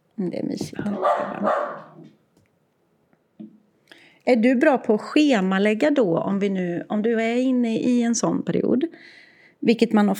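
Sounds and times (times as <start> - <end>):
speech: 0.2 - 2.2, 4.2 - 10.1
dog barking and yapping: 0.9 - 2.1.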